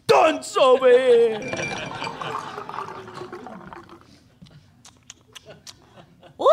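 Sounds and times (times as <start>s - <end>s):
speech: 0.3s - 2.4s
light clinks of a glass: 1.3s - 4.0s
cocktail pouring from a shaker into a glass: 1.4s - 4.2s.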